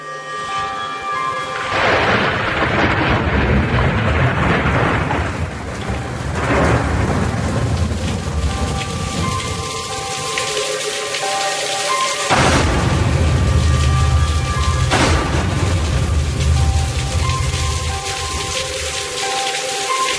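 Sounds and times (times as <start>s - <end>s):
heavy downpour at a university campus in Jatinangor: 0.0s - 20.1s
deep rolls of thunder rumbling: 1.6s - 10.4s, 12.3s - 19.4s.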